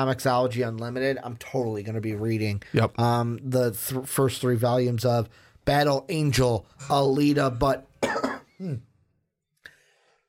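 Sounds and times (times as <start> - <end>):
speech: 0.0 - 8.9
person clearing throat: 8.0 - 9.0
person coughing: 8.0 - 9.0.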